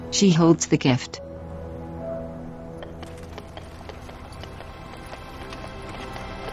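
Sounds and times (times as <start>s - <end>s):
speech: 0.2s - 1.2s
horse hooves clip-clopping pulling a carriage: 2.8s - 6.5s
horse-drawn carriage rolling: 2.8s - 6.5s.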